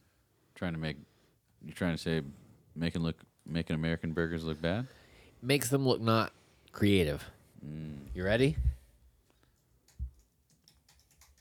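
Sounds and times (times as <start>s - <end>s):
speech: 0.6s - 8.7s
keys struck hard on a computer keyboard: 9.8s - 11.3s.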